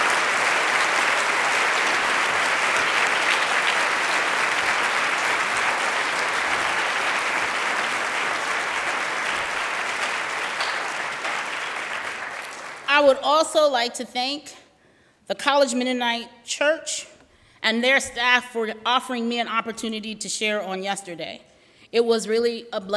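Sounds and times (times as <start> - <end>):
sustained applause from a sizable audience: 0.0 - 12.9
speech: 13.0 - 14.6, 15.3 - 22.9.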